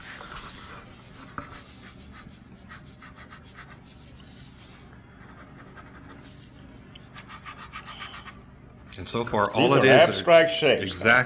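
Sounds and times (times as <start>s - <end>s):
pencil drawing on paper: 0.4s - 9.0s
speech: 9.0s - 11.2s.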